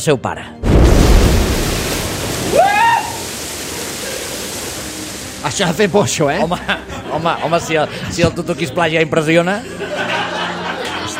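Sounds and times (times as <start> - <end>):
speech: 0.0 - 1.0, 5.4 - 10.0
roaring rush of churning water from steel ship funnel plunging into water: 0.6 - 6.4
laughter: 6.4 - 8.4, 9.6 - 11.1.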